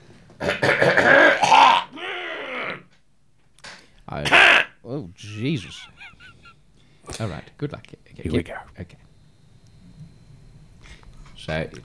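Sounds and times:
loud raspy throat clearing: 0.4 - 2.8, 4.3 - 6.5
laughter: 4.2 - 7.4
speech: 7.2 - 9.1, 11.4 - 11.8
short faint exhale: 10.8 - 11.3.

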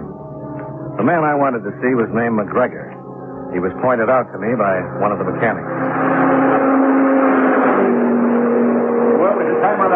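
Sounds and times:
speech: 1.0 - 6.2, 9.6 - 9.9
cars roaring along a test track during road testing: 4.8 - 9.9.

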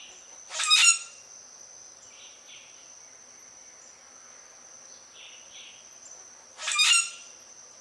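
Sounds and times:
steady high-pitched insect drone: 0.0 - 7.8
common grackle harsh creaky calls: 0.5 - 1.2, 6.6 - 7.3.

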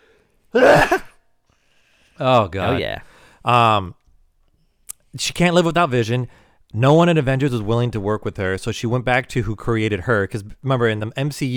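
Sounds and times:
speech: 0.5 - 1.0, 2.2 - 4.0, 5.2 - 11.5
loud sneeze: 0.5 - 1.2.

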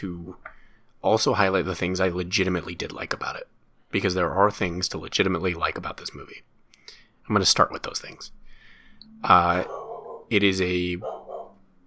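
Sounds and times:
speech: 0.0 - 6.5, 7.3 - 8.4, 9.0 - 11.2
quiet low sounds: 0.0 - 11.8
dog barking: 9.5 - 10.3, 11.0 - 11.6.

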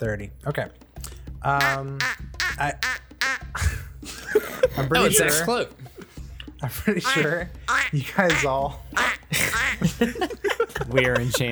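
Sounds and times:
speech: 0.0 - 3.0, 4.6 - 5.9, 6.6 - 11.5
person imitating duck quacking: 1.6 - 3.8, 7.0 - 10.0
laughter: 1.6 - 11.5.

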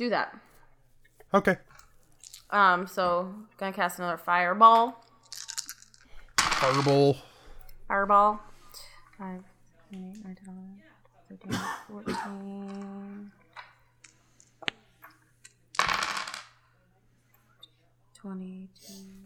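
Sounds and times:
speech: 0.0 - 0.5, 1.3 - 1.8, 2.5 - 5.0, 6.6 - 7.3, 7.9 - 8.5, 9.2 - 13.4, 18.2 - 19.2
handful of dice rolled across a hard surface for fireball damage in a game: 2.1 - 2.5, 5.0 - 7.1, 15.7 - 16.6.

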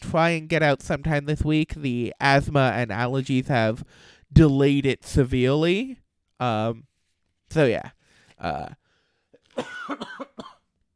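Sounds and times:
speech: 0.1 - 6.9, 7.5 - 8.8, 9.6 - 10.5
person in a harsh coughing fit: 9.5 - 10.7.

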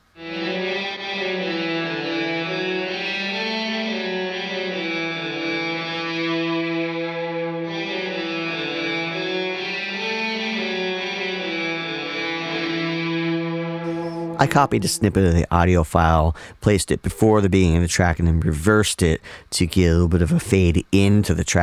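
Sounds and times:
heavily fuzzed electric guitar chords with spacious digital reverb: 0.0 - 15.4
speech: 14.4 - 21.6.

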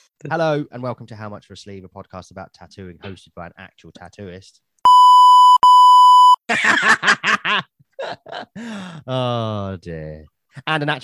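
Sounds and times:
speech: 0.2 - 4.7, 6.5 - 11.0
censor bleep tone: 4.9 - 6.4
giggly laughter: 6.5 - 9.0.

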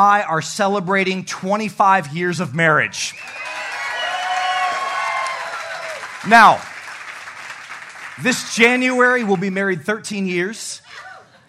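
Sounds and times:
speech: 0.0 - 3.5, 6.2 - 6.7, 8.2 - 10.8
crowd applauding and cheering: 3.1 - 9.8.

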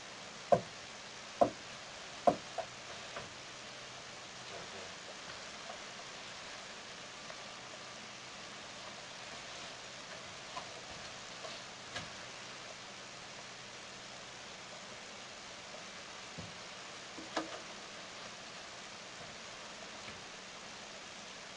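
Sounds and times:
steady low hiss: 0.0 - 21.5
person knocking on a wooden bench: 2.2 - 2.7.

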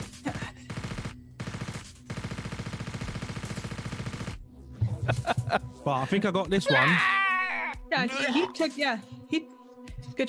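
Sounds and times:
rapid automatic gunfire in a video game: 0.3 - 4.4
laughter: 4.8 - 7.3
speech: 5.1 - 7.2, 8.0 - 9.5.

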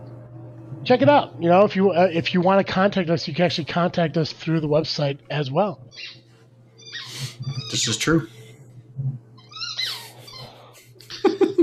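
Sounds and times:
low steady hum: 0.0 - 11.6
speech: 0.9 - 6.2, 6.9 - 8.4
squeaky toy squeaking: 9.5 - 10.5
laughter: 10.3 - 11.6.

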